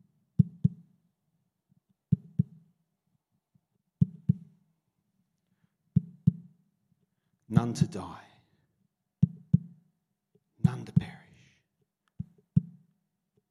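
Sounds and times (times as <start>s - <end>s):
imitated heartbeat thumping made by person tapping: 0.4s - 0.8s, 2.1s - 2.6s, 4.0s - 4.5s, 6.0s - 6.5s, 9.2s - 9.8s, 12.2s - 12.8s
speech: 7.5s - 8.3s.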